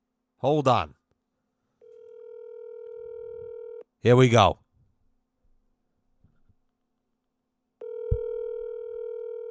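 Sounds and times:
speech: 0.4s - 1.0s, 4.0s - 4.6s
electronic telephone ringback tone of an outgoing phone call: 1.8s - 3.8s, 7.8s - 9.4s.

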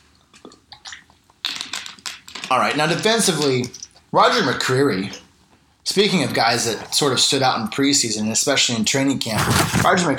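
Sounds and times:
soft wet mouth noises: 0.1s - 2.5s
slurping gulp: 0.4s - 1.7s
speech: 2.5s - 5.2s, 5.8s - 10.1s.

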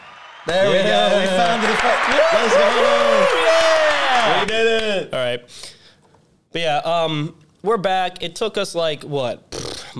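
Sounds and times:
cheering voices: 0.0s - 4.5s
applause sound effect played from a soundboard: 0.0s - 4.9s
speech: 0.4s - 3.6s, 4.2s - 5.7s, 6.5s - 9.9s.

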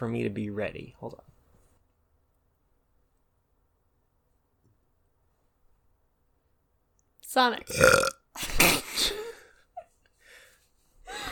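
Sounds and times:
speech: 0.0s - 1.3s, 7.3s - 8.8s
person burping: 7.7s - 8.8s
quiet breathing: 9.3s - 11.2s.

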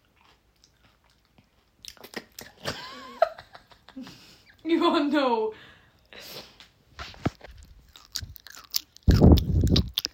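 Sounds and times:
irregular mouth smacking and crunchy bursts: 0.0s - 2.6s, 7.9s - 10.1s
wet chewing of chocolate-infused gum: 0.0s - 2.6s, 7.2s - 10.1s
speech: 4.0s - 5.7s.

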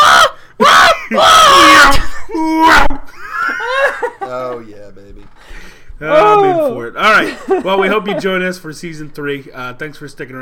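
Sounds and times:
vocal imitation of screaming with Doppler effect: 0.0s - 3.1s, 6.1s - 6.8s
laughter: 0.9s - 4.6s, 7.1s - 8.5s
speech: 7.6s - 10.3s.

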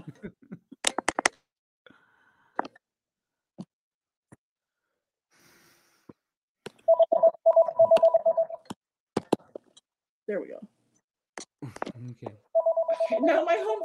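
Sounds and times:
phone ringing with rapid pulsing electronic tone: 6.9s - 8.6s, 12.6s - 13.8s
speech: 10.3s - 10.7s, 12.1s - 12.5s, 13.1s - 13.8s.

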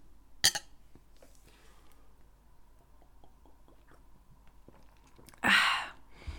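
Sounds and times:
person gulping beer: 2.8s - 5.5s.

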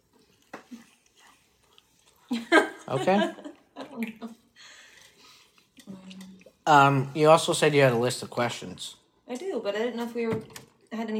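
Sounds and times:
wet open-mouthed chewing with smacking: 0.0s - 2.3s, 3.9s - 6.6s
speech: 2.3s - 3.4s, 4.0s - 4.3s, 6.7s - 11.1s
laughter: 2.3s - 4.4s.

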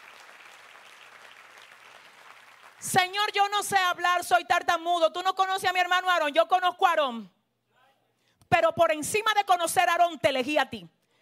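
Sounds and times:
audience applause: 0.0s - 2.8s
speech: 2.8s - 7.4s, 8.6s - 11.0s.

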